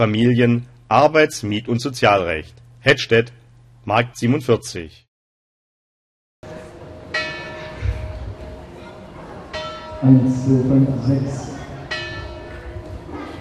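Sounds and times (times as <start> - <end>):
speech: 0.0 - 5.0, 10.0 - 11.5
church bells ringing in a bell tower in Hettstedt: 7.1 - 13.3.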